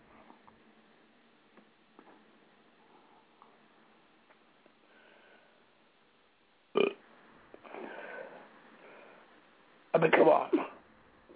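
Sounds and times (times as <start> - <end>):
breathy rustling exhale: 4.9 - 5.7, 7.6 - 9.3
person burping: 6.8 - 7.0.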